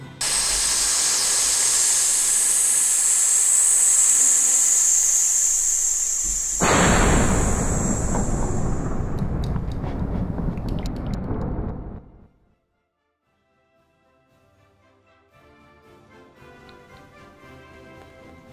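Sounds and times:
lit fuse sputtering and hissing: 0.2 - 10.5
fireball roaring: 6.5 - 12.3.

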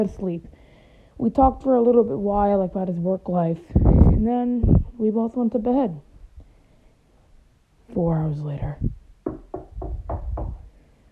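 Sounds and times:
speech: 0.0 - 0.6, 1.2 - 6.1, 7.9 - 9.0
firm knocking on a door: 9.2 - 10.7.

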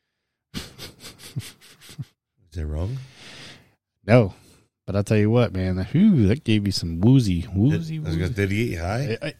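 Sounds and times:
person imitating sniffing and huffing nail polish remover: 0.5 - 2.2
speech: 2.6 - 3.1, 4.1 - 9.3.

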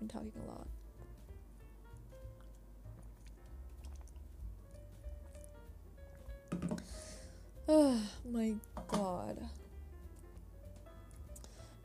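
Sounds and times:
speech: 0.0 - 0.8, 7.7 - 9.6
person sipping and swallowing water: 2.4 - 4.4.

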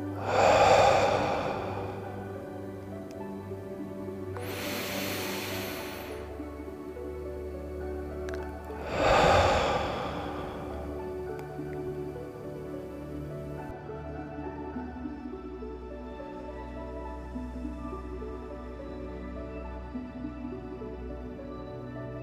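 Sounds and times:
slow deep breathing in through the nose and out through the mouth: 0.0 - 3.3, 4.4 - 6.6, 8.7 - 12.3
soft steady drone: 0.0 - 22.2.

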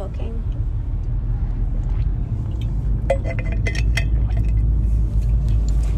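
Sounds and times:
low road rumble inside a car in peak hour rain traffic in Queensland: 0.0 - 5.9
light clinks and rattles: 3.1 - 5.9.

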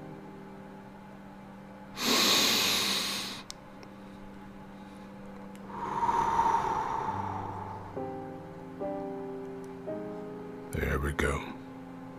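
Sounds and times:
low steady musical drone with soft notes: 0.0 - 12.1
breathing in through the nose and out through the mouth: 2.0 - 8.6
speech: 10.8 - 11.6.

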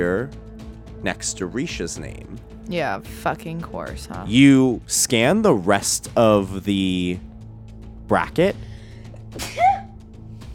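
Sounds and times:
speech: 0.0 - 7.3, 8.1 - 8.7, 9.3 - 9.6
single sharp sneeze: 9.4 - 10.0.

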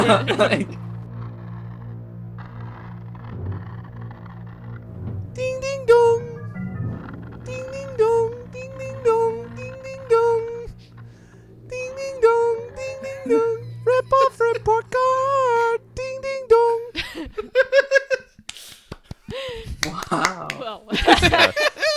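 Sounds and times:
laughter: 0.0 - 0.8, 16.9 - 18.4, 19.2 - 21.9
speech: 0.0 - 0.9
low steady hum: 0.0 - 18.0
person singing a theme jingle: 5.4 - 10.8, 11.6 - 17.0.

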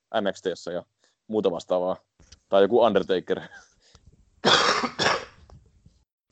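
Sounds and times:
speech: 0.1 - 3.7
harsh loud coughs with throat-clearing quality: 4.4 - 5.4.

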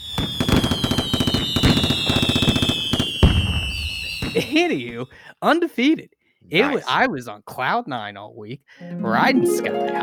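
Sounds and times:
fireworks crackling pops: 0.0 - 5.1
speech: 4.5 - 10.0.

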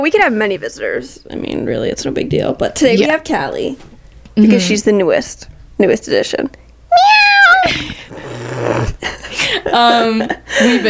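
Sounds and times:
speech: 0.0 - 10.8
female cat grumbling: 8.1 - 9.0.

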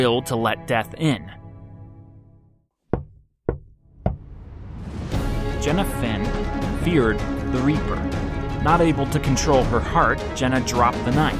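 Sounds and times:
speech: 0.0 - 1.4, 5.6 - 11.3
heavy knocks on a wooden door: 2.9 - 4.3.

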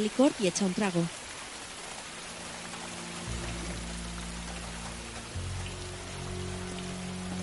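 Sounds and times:
speech: 0.0 - 1.2
heavy rain pouring down: 0.0 - 7.4
low hum: 2.3 - 7.4.

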